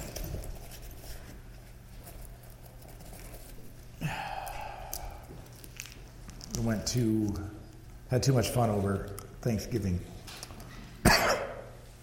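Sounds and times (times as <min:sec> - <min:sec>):
low steady hum: 0:00.0 - 0:12.0
cough drop wrapper crinkling while being unwrapped: 0:04.9 - 0:06.9
speech: 0:06.6 - 0:10.1.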